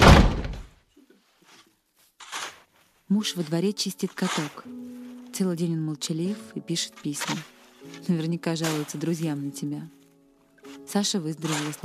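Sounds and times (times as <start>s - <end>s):
man slamming a study door shut: 0.0s - 0.8s
short softer rustling scrape: 1.1s - 11.8s
speech: 3.1s - 10.0s, 10.9s - 11.8s.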